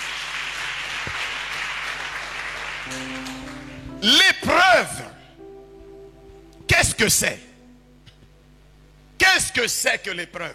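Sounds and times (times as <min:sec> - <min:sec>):
church congregation applauding: 0:00.0 - 0:04.4
speech: 0:02.9 - 0:03.2, 0:04.0 - 0:05.1, 0:06.9 - 0:07.5, 0:09.6 - 0:10.5
sustained tone: 0:02.9 - 0:09.2.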